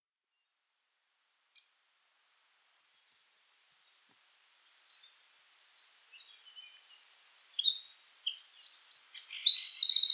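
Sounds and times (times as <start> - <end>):
Eurasian wren Troglodytes troglodytes singing: 6.5 - 10.1.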